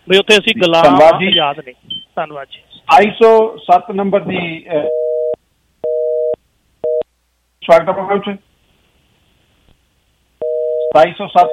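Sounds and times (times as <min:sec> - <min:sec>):
speech: 0:00.1 - 0:05.0, 0:07.6 - 0:08.5, 0:10.9 - 0:11.5
steady telephone line tone after a dropped call: 0:04.8 - 0:07.0, 0:10.4 - 0:11.5.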